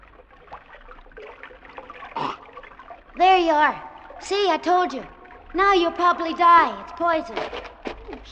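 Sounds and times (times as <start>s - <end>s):
stream water trickling and splashing: 0.0s - 8.3s
person drinking from a stream: 1.8s - 3.0s, 7.3s - 8.3s
speech: 3.2s - 8.3s.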